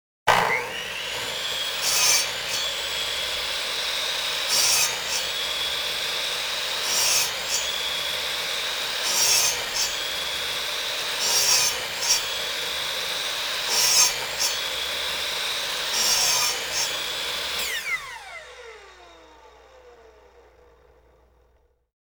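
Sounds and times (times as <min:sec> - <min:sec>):
mitre saw: 0:00.3 - 0:21.6.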